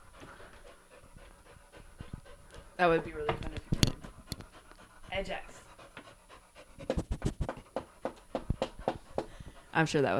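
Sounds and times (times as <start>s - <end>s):
dog panting: 0.0s - 10.1s
speech: 2.8s - 3.6s, 5.2s - 5.6s, 9.8s - 10.1s.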